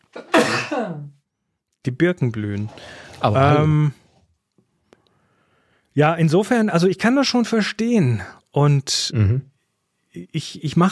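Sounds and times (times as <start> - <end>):
sneeze: 0.1 - 1.1
speech: 0.1 - 1.2, 1.8 - 4.0, 6.0 - 9.5, 10.1 - 10.9.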